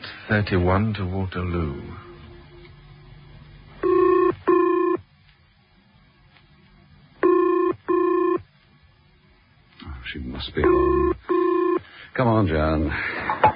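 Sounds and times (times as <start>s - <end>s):
faint low hum: 0.0s - 13.5s
speech: 0.3s - 2.1s, 10.4s - 11.2s, 12.2s - 13.1s
telephone ringback tone heard over the line from Salisbury Station: 3.8s - 5.0s, 7.2s - 8.4s, 10.6s - 11.8s.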